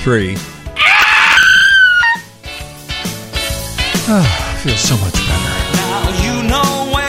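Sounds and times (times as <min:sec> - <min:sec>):
speech: 0:00.0 - 0:00.5, 0:04.1 - 0:06.9
group screaming: 0:00.8 - 0:02.3.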